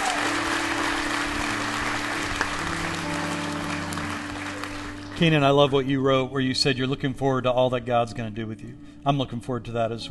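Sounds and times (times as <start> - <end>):
audience applauding a baptism: 0.0 - 5.7
speech: 5.2 - 10.0.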